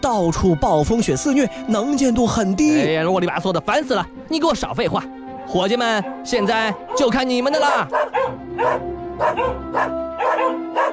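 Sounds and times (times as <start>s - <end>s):
speech: 0.0s - 10.9s
sled dogs barking: 5.9s - 10.9s.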